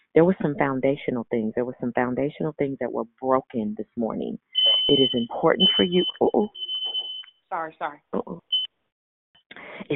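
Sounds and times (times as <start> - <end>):
speech: 0.1 - 6.7, 7.5 - 8.5, 9.5 - 9.9
shrill high-pitched electronic beep: 4.6 - 7.3.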